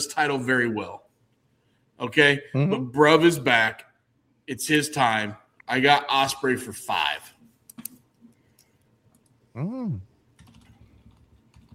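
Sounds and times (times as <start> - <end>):
speech: 0.0 - 1.1, 2.0 - 3.9, 4.5 - 7.3, 9.6 - 10.1
person humming a rising-and-falling mm: 9.6 - 10.1
light typing on a keyboard: 10.4 - 11.7.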